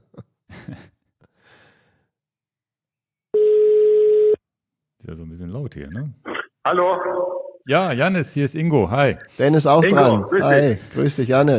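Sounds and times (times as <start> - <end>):
steady telephone tone as a call to Spain connects: 3.3 - 4.4
speech: 5.1 - 11.5.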